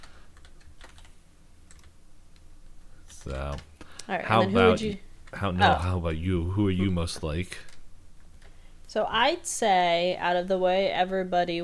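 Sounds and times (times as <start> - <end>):
typing on a computer keyboard: 0.0 - 2.0
low steady hum: 0.0 - 11.6
speech: 3.2 - 7.7, 8.9 - 11.6.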